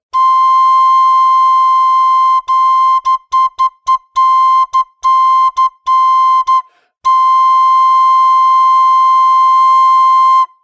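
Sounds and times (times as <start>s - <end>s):
high C note on an American flute: 0.1s - 10.6s.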